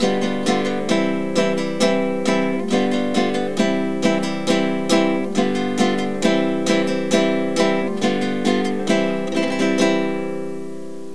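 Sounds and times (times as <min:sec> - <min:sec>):
sevillanas music: 0:00.0 - 0:11.1.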